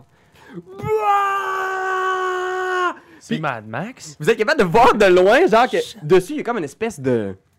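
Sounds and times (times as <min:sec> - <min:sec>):
speech: 0:00.5 - 0:01.3, 0:03.3 - 0:07.4
person imitating a distant war cry with a wailing yell: 0:00.7 - 0:03.0.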